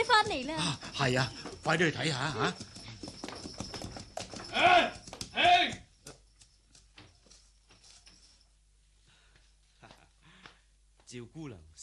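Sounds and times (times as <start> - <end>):
speech: 0.0 - 2.7, 11.1 - 11.8
horse hooves clip-clopping as a horse-drawn carriage approaches at night: 0.0 - 8.4.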